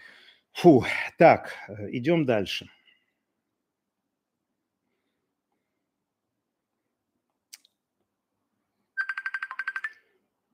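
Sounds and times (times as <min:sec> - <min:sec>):
speech: 0:00.6 - 0:02.8
mobile phone ringtone for an incoming call: 0:09.0 - 0:10.0.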